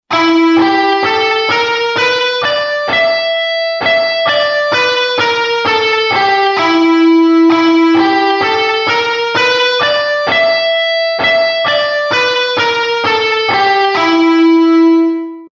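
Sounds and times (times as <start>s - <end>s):
E blues scale: 0.0s - 15.5s.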